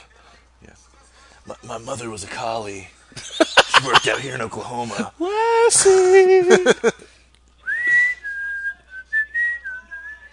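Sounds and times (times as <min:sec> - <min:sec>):
speech: 0:00.6 - 0:07.2
laughter: 0:03.2 - 0:07.1
person whistling a wavering sustained tune: 0:07.6 - 0:10.3.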